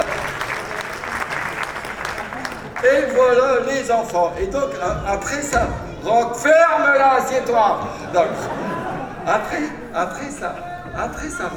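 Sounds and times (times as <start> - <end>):
applause from a live show audience: 0.0 - 3.5
speech: 2.9 - 8.6, 9.3 - 11.5
laughter: 7.2 - 11.5.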